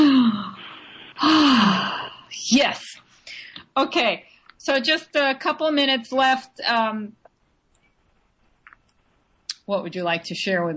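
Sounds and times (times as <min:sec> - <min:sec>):
woman breathing deeply mid-conversation: 0:00.0 - 0:02.3
speech: 0:02.5 - 0:03.1, 0:03.8 - 0:07.2, 0:09.7 - 0:10.7.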